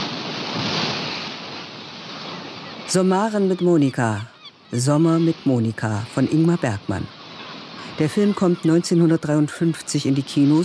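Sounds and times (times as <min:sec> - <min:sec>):
waves washing: 0:00.0 - 0:10.6
speech: 0:02.9 - 0:07.2, 0:07.8 - 0:10.6.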